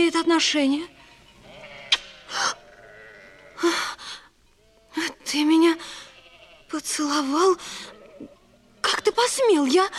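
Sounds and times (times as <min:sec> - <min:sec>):
speech: 0:00.0 - 0:01.0, 0:05.0 - 0:06.0, 0:06.7 - 0:08.3, 0:08.9 - 0:09.9
sheep bleating: 0:00.0 - 0:03.7, 0:05.9 - 0:06.8, 0:07.8 - 0:09.3.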